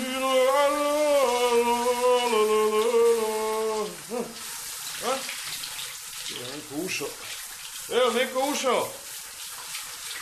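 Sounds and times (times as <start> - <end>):
person humming in the shower: 0.0 - 4.4
warm shower water running: 0.0 - 10.2
speech: 8.1 - 9.0.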